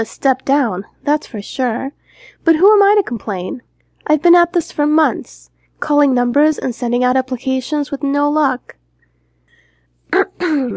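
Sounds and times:
speech: 0.0 - 8.8, 10.1 - 10.7
person clearing throat: 10.1 - 10.7.

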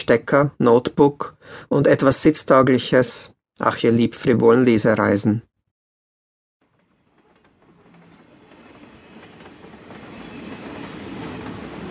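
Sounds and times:
speech: 0.0 - 5.5
intercity train rumbling at the platform: 6.6 - 11.8.

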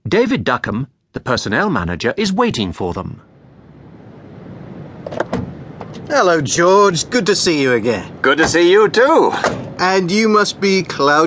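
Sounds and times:
speech: 0.1 - 3.3, 6.1 - 11.2
minibus rumbling as it pulls into a firm's car park: 2.6 - 11.2.

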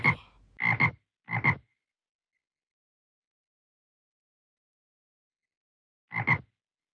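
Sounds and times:
frog croaking in raspy double-pulsed calls in a pond: 0.0 - 1.7, 6.1 - 6.5.

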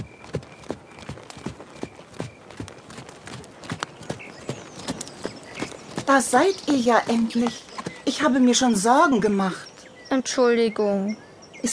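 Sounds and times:
horse hooves clip-clopping as riders head home: 0.0 - 8.8
speech: 6.1 - 11.7.

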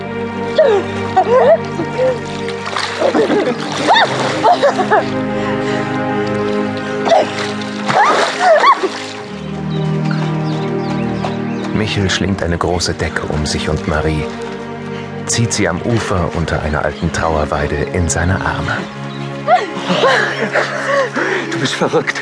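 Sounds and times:
sustained musical backdrop: 0.0 - 22.2
splashing in water as people run in: 0.5 - 11.0
speech: 0.6 - 6.4, 7.1 - 9.1, 11.8 - 14.5, 15.3 - 22.2
laughter: 3.0 - 5.1, 19.5 - 22.2.

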